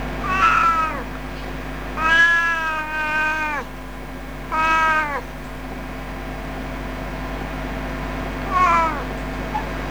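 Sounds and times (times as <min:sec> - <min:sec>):
cat meowing: 0:00.2 - 0:01.3, 0:01.9 - 0:03.8, 0:04.4 - 0:05.4, 0:08.4 - 0:09.7.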